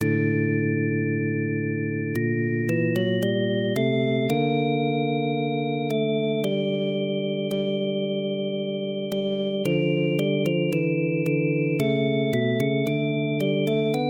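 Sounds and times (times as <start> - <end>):
vibraphone organ: 0.0 - 14.0.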